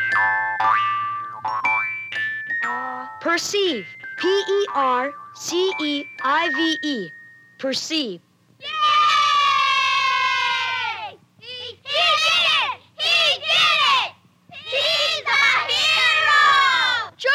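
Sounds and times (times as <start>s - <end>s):
speech: 0.2s - 1.7s, 2.7s - 8.8s
crowd of children shrieking and yelling: 8.6s - 17.1s.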